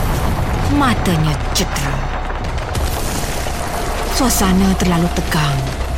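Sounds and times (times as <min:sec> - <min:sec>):
deep heavy explosion: 0:00.0 - 0:04.2
speech: 0:00.7 - 0:02.1, 0:04.2 - 0:05.7.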